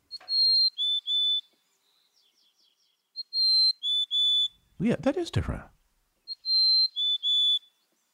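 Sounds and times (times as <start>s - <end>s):
mountain chickadee singing high whistled notes: 0.1s - 1.5s, 3.2s - 4.6s, 6.3s - 7.8s
speech: 4.8s - 5.8s.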